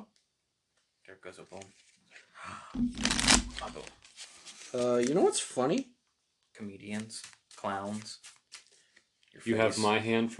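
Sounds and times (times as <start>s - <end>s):
speech: 1.1s - 6.0s, 6.6s - 8.4s, 9.4s - 10.3s
deck of cards shuffled during a tabletop card game: 2.8s - 5.8s, 6.9s - 9.3s.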